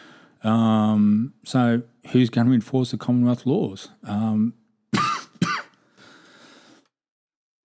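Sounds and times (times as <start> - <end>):
speech: 0.4 - 4.6
person coughing: 5.0 - 5.8.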